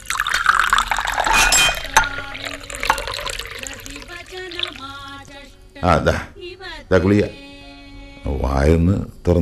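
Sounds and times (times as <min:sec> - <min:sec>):
glass clinking: 0:00.0 - 0:04.8
water poured into a drinking glass: 0:00.0 - 0:05.4
speech: 0:05.8 - 0:06.3, 0:06.9 - 0:07.4, 0:08.2 - 0:09.4.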